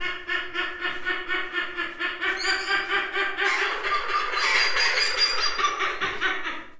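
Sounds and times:
laughter: 0.0 - 6.7
trumpeter hornbill calling at Debrecen zoo: 2.2 - 6.6.

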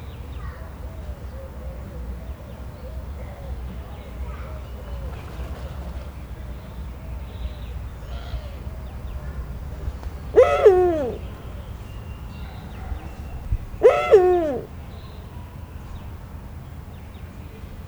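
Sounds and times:
captive Eurasian eagle-owl descending harmonic calls at a zoo in Szeged: 10.3 - 11.5, 13.8 - 14.7.

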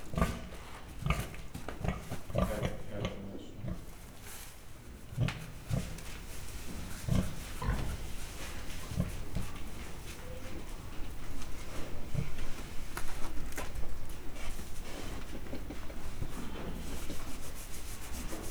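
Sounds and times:
captive Mangalica pig making short low rough sounds at a zoo in Miskolc: 1.0 - 4.0, 5.2 - 17.8
pig scratching itself and shaking its ears, rustling and shuffling: 3.9 - 18.4.

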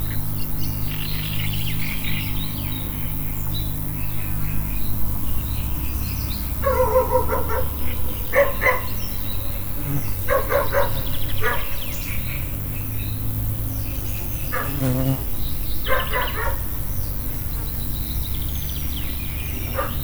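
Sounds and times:
loud insect in Tiszababolna: 0.0 - 20.0
dog in Tiszababolna: 6.6 - 8.9, 10.3 - 11.7, 15.9 - 16.6, 19.7 - 20.0.

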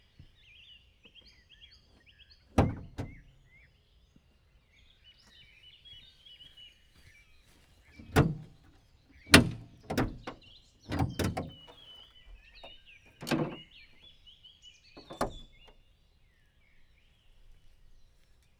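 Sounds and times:
Opel car bonnet opening automatically: 2.6 - 3.3, 8.0 - 8.5, 9.3 - 11.6
Opel car bonnet closed by hand: 2.6 - 3.4, 8.0 - 8.6, 9.3 - 11.6, 13.2 - 13.7, 15.0 - 15.6.

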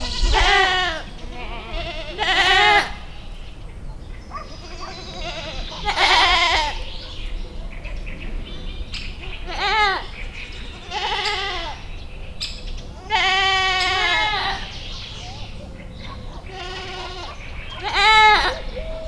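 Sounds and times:
domestic goat bleating: 0.0 - 3.6, 4.4 - 7.0, 9.2 - 11.9, 13.0 - 15.5, 16.3 - 19.0.

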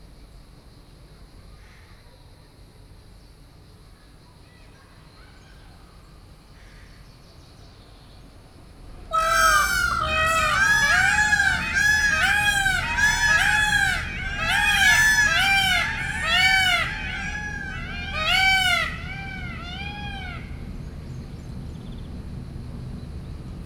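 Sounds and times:
peacocks calling outdoors at Makryammos beach on Thassos: 9.1 - 21.1.

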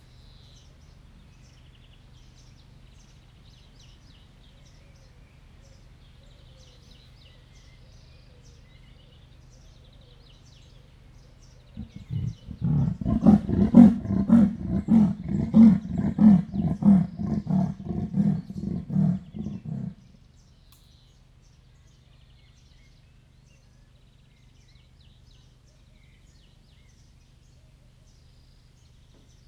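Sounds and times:
leopard in a zoo wanting to go from its outdoor run into its house: 11.8 - 20.2.

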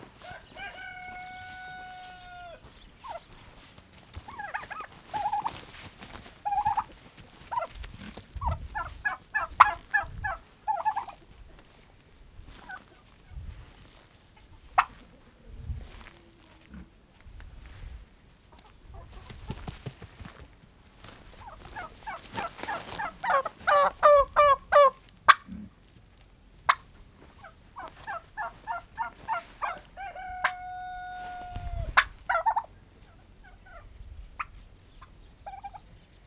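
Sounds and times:
turkey gobbling in a farmyard: 0.0 - 11.8, 12.5 - 13.1, 14.4 - 15.3, 21.0 - 25.6, 26.5 - 36.0.

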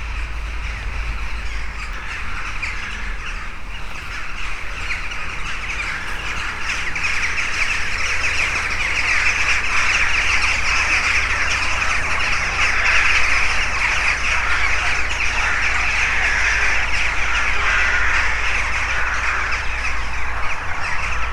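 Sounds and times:
crows cawing in Hortobágy National Park: 0.0 - 21.3
starlings calling in Hortobágy National Park: 0.0 - 21.3.

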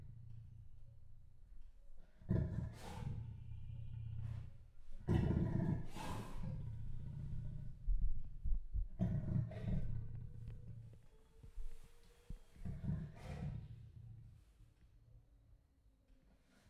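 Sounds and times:
captive male leopard giving low raspy grunts in a zoo: 2.0 - 8.2, 8.9 - 11.8, 12.5 - 14.0.

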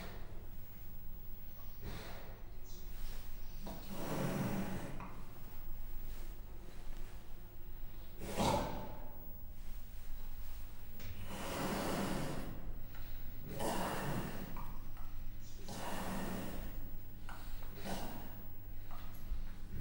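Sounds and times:
captive Persian leopard making breathy snorting exhalations in a zoo: 1.7 - 6.3, 8.0 - 9.2, 11.1 - 14.9, 15.5 - 19.8.

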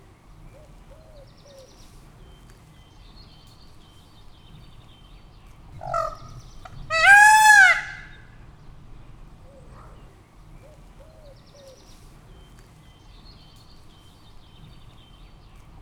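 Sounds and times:
peacock calling at Pecs zoo: 5.8 - 10.1.

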